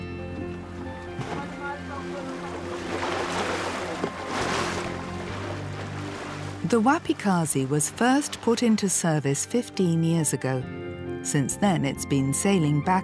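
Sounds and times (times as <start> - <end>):
water being bailed out of a wooden passenger ferry: 1.1 - 9.0
washing sea noise between Zanzibar and Mafia: 1.1 - 9.7
speech: 6.7 - 13.0.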